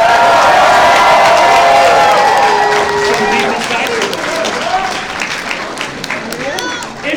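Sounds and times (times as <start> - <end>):
cheers and whoops: 0.0 - 5.1
crowd applause for a vote: 0.0 - 7.1.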